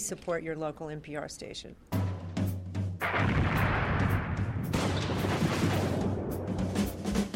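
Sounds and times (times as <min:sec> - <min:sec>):
speech: 0:00.1 - 0:02.0
fireworks exploding: 0:03.0 - 0:07.1
booming rumble: 0:03.0 - 0:07.2.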